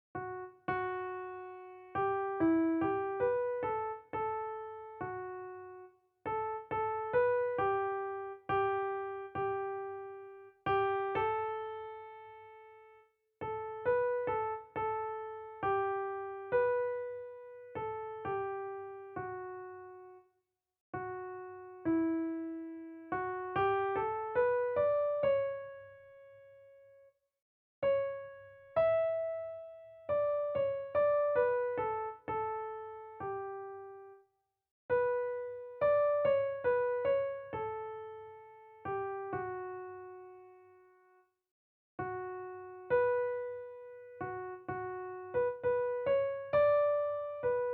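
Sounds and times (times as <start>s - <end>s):
music: 0.0s - 47.7s.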